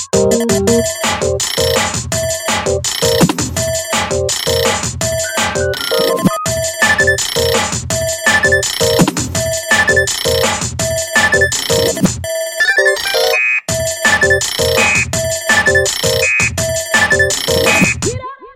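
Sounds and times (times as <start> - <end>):
smartphone message alert tones: 0.2 - 1.8, 2.7 - 3.3, 4.4 - 7.6, 8.3 - 9.1, 9.7 - 10.5, 11.2 - 18.0
smartphone alarm clock ringtone: 0.2 - 3.3, 4.4 - 18.0.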